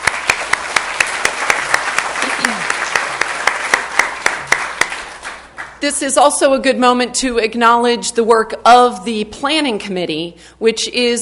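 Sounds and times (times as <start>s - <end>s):
crowd applauding: 0.0s - 5.8s
sharper closer hand claps: 0.0s - 5.8s
speech: 5.8s - 11.1s.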